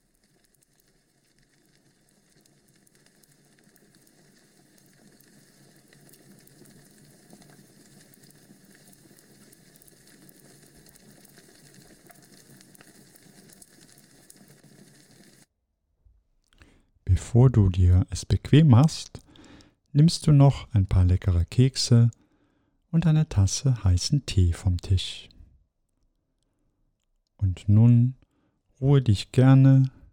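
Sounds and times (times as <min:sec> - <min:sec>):
small fire crackling in an open fireplace: 0:00.0 - 0:15.5
speech: 0:17.2 - 0:19.2, 0:20.0 - 0:22.2, 0:22.9 - 0:25.3, 0:27.5 - 0:28.2, 0:28.8 - 0:30.0.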